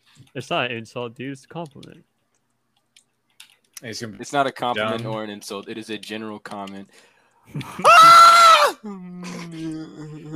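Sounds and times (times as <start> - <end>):
speech: 0.3 - 2.1, 3.8 - 10.3
person screaming: 7.8 - 8.8.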